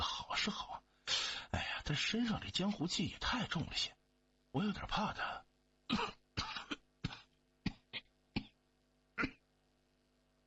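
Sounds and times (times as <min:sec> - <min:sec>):
speech: 0:00.4 - 0:00.7, 0:01.9 - 0:06.1
low coughs muffled behind a hand: 0:05.9 - 0:08.6, 0:09.2 - 0:09.4.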